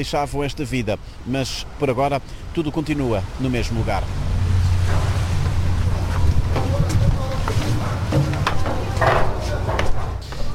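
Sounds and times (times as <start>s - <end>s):
speech: 0.0s - 4.3s
rushing wind and water at sea: 0.0s - 10.5s
boat engine drone at sea crossing to Santo Antão Cape Verde: 3.0s - 10.2s
knocks on a boat: 6.5s - 10.4s.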